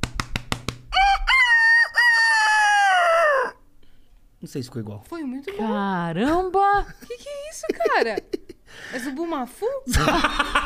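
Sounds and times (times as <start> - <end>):
sharp taps: 0.0 - 0.9
person imitating rooster crowing: 0.9 - 3.6
speech: 4.5 - 8.3, 9.0 - 10.6
laughter: 6.8 - 8.6, 9.9 - 10.6.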